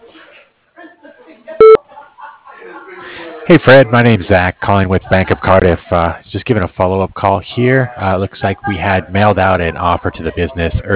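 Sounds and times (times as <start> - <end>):
voicemail beep on a business answering machine: 1.6 - 1.8
speech: 3.5 - 10.9.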